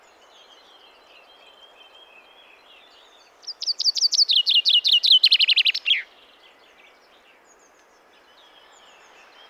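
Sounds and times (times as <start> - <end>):
Common chaffinch Fringilla coelebs singing a rapid descending run of sharp notes: 3.5 - 6.0.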